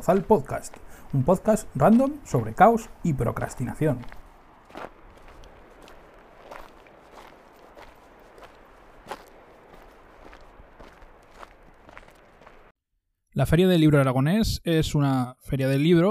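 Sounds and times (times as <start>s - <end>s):
speech: 0.0s - 4.2s, 13.4s - 16.1s
footsteps crunching over rough ground on a mountain hike: 0.0s - 12.7s.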